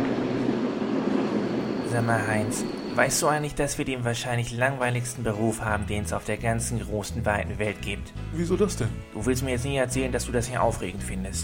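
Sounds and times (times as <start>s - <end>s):
faint high whine: 0.0s - 4.0s
regional express train arriving at railway station platform: 0.0s - 4.6s
speech: 2.0s - 11.4s.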